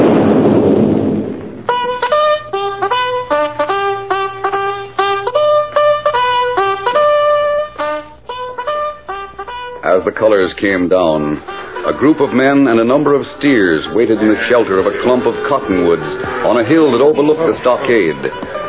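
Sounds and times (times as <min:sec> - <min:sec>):
sunset gun cannon firing at an army outpost: 0:00.0 - 0:02.8
brass melody: 0:01.6 - 0:18.6
speech: 0:10.2 - 0:18.6
laughter: 0:11.4 - 0:18.6.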